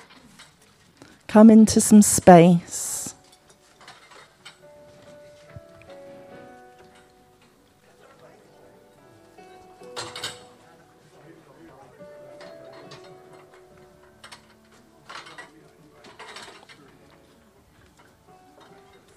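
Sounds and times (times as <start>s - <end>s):
speech: 1.3s - 2.7s
chairs scraping and clattering as they are shifted and stacked: 3.1s - 8.3s, 8.9s - 10.7s, 12.4s - 19.1s.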